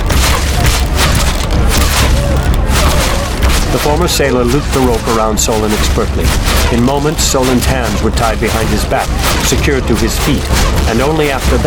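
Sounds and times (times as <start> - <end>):
volley of gunshots from soldiers firing together: 0.0 - 11.6
speech: 3.8 - 11.6.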